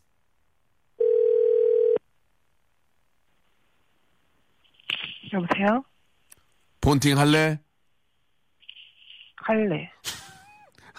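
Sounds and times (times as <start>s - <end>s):
telephone ringback tone while a call is being placed: 1.0s - 2.0s
speech: 5.4s - 5.9s, 6.8s - 7.6s, 9.5s - 10.2s.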